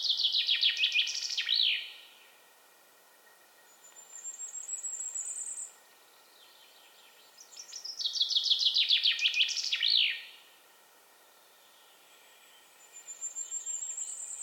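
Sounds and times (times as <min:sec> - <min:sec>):
common chaffinch Fringilla coelebs singing: 0:00.0 - 0:02.4, 0:03.1 - 0:10.5, 0:11.3 - 0:14.4.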